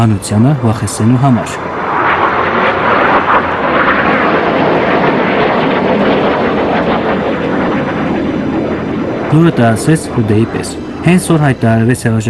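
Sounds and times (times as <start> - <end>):
speech: 0.0 - 1.7, 9.3 - 12.2
F-16 fighter jets flying low over Ankara during a coup attempt: 0.0 - 12.2.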